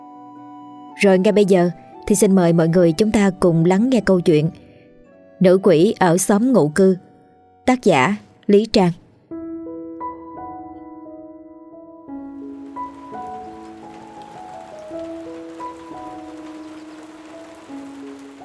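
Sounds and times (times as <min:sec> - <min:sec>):
speech: 0:01.0 - 0:04.6, 0:05.4 - 0:07.1, 0:07.7 - 0:09.0
steady drizzling rain: 0:12.4 - 0:18.4.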